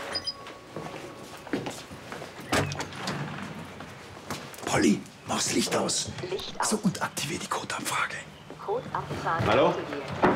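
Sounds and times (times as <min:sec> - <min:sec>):
door opening with mechanical whir and sliding clunks: 0:02.4 - 0:03.7
speech: 0:04.7 - 0:10.3.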